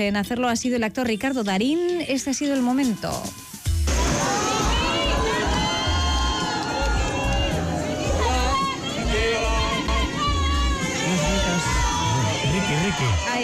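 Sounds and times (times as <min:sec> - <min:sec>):
speech: 0:00.0 - 0:03.4, 0:12.9 - 0:13.4
crowd of fans screaming and cheering at an actor's arrival at a film festival: 0:03.1 - 0:13.4.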